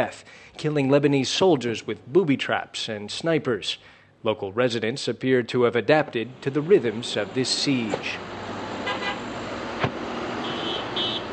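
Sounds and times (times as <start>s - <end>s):
speech: 0.0s - 8.4s
traffic streaming down a highway overlooking a besieged camp: 6.0s - 11.3s
high-pitched horn toots: 8.8s - 9.4s, 10.4s - 11.3s
sharp thump: 9.8s - 10.0s.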